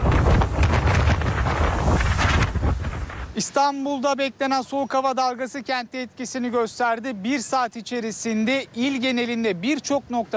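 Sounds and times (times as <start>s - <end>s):
wind buffeting the microphone: 0.0s - 3.5s
strong wind with rain during an evening cold snap in Istanbul: 0.0s - 4.0s
speech: 3.4s - 10.3s.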